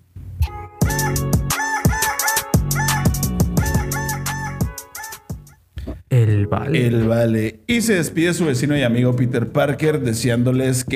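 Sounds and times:
loud punchy rhythmic backing: 0.4s - 7.1s
voice imitating a rooster crow through heavy autotune: 0.9s - 5.5s
speech: 6.4s - 10.9s.

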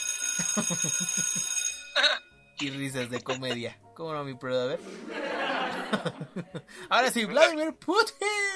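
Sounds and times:
school recess bell ringing: 0.0s - 3.5s
speech: 0.4s - 5.3s, 5.9s - 8.4s
laughter: 2.0s - 3.7s, 4.8s - 7.6s.

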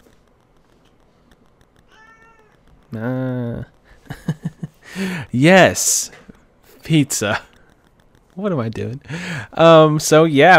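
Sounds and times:
cat meowing: 1.9s - 2.6s
speech: 2.9s - 3.7s, 5.0s - 6.2s, 6.9s - 7.5s, 8.4s - 10.5s
laughter: 4.0s - 5.1s.

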